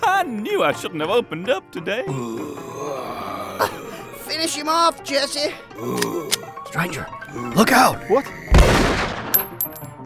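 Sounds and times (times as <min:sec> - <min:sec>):
speech: 0:00.2 - 0:09.0
gunshots in a western audio drama shootout: 0:08.5 - 0:09.7.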